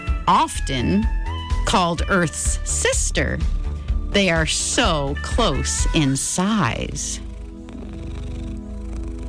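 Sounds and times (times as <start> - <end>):
speech: 0.3 - 7.2
cat purring: 3.3 - 9.2.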